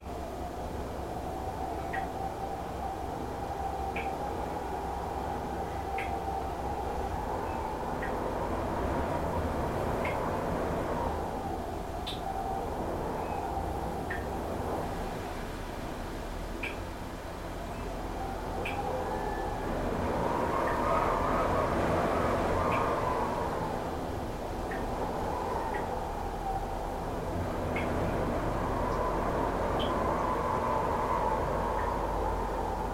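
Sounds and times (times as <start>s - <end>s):
rain: 0.0s - 32.9s
wind heard from inside a bathroom by a road in Paracas: 0.0s - 32.9s.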